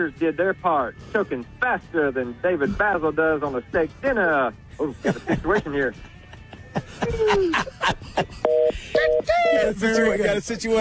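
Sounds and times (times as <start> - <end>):
speech: 0.0 - 6.2, 6.8 - 10.7
laughter: 4.7 - 10.7
telephone touch-tone dialing beeps: 8.4 - 9.3.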